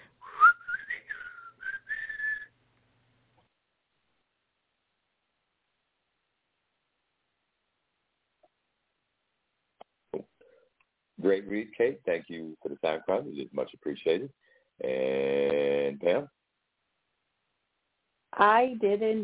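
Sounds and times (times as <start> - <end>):
person whistling a short wavering tune: 0.2 - 2.5
speech: 11.2 - 15.3, 18.4 - 19.2.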